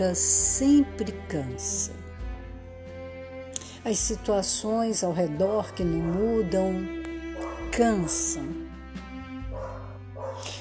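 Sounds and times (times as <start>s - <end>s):
speech: 0.0s - 2.0s, 3.8s - 7.0s, 7.8s - 8.6s
dog barking in short yelping bursts: 7.4s - 7.7s, 9.5s - 10.5s.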